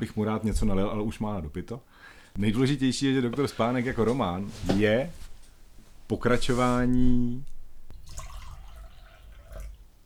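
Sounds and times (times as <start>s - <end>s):
speech: 0.0s - 5.3s, 6.1s - 7.5s
small drips of water: 7.4s - 9.9s
water pouring: 7.9s - 9.9s.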